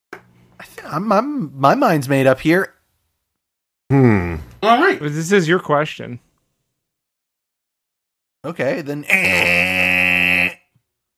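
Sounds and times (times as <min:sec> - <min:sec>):
speech: 0:00.8 - 0:02.8, 0:03.9 - 0:06.3, 0:08.4 - 0:09.7
voice imitating a timer buzzer: 0:09.1 - 0:10.6.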